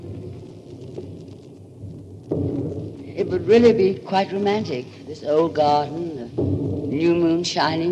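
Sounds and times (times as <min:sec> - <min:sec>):
distant artillery guns rumbling: 0:00.0 - 0:07.9
speech: 0:03.2 - 0:06.4, 0:07.0 - 0:07.9.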